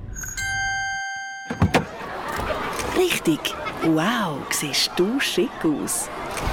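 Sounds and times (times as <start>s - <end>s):
limousine electronic chime: 0.1s - 1.9s
laughter: 1.8s - 6.4s
speech: 3.0s - 6.5s.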